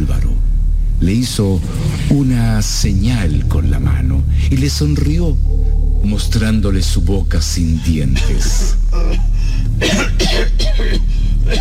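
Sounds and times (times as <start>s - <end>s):
speech: 1.0s - 11.5s
old man's sudden harsh rasping coughing fit: 8.1s - 11.5s.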